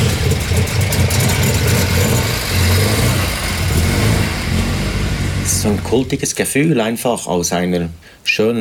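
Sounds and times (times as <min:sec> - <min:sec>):
1960s Italian car engine idling and revving: 0:00.0 - 0:06.3
speech: 0:05.7 - 0:08.5.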